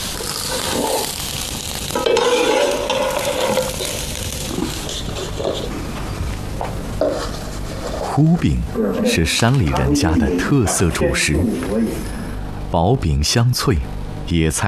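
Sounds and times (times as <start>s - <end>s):
thin flatbread frying slowly in a pan: 0.0s - 6.5s
utensil scraping and stirring against the pan: 2.0s - 5.8s, 7.1s - 8.2s
speech: 8.2s - 14.6s.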